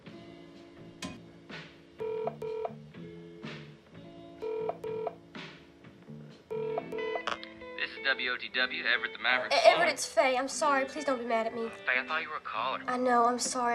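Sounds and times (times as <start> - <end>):
touch-tone telephone dialing beeps through a switchboard: 2.0 - 2.7, 4.4 - 5.1, 6.5 - 7.4
speech: 8.1 - 13.7.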